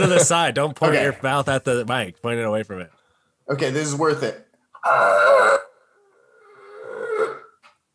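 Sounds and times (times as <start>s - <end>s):
laughter: 0.0s - 1.2s
speech: 0.0s - 5.6s
person imitating a monstrous demon scream into a microphone: 4.8s - 5.8s.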